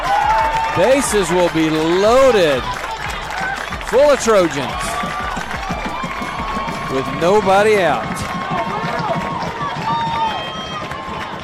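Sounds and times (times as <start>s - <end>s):
large baseball crowd roaring and cheering: 0.0s - 11.4s
high shouts and whistle-like cheers from baseball crowd: 0.1s - 9.0s
speech: 0.8s - 2.8s, 3.9s - 4.9s, 6.9s - 8.1s
murmured voices: 2.4s - 8.7s.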